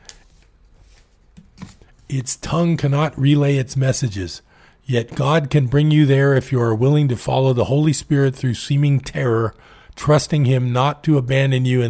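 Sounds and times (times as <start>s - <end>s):
double-sided paper pages rustling as they are handled: 0.0s - 2.2s
speech: 2.1s - 11.8s.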